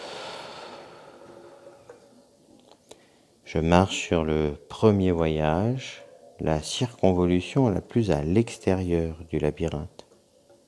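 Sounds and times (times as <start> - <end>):
long airy breath out: 0.0 - 2.1
speech: 3.5 - 10.0.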